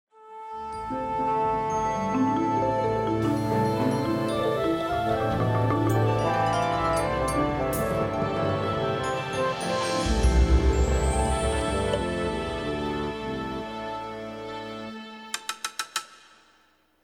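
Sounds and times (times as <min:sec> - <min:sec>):
orchestra tuning up: 0:01.7 - 0:14.8.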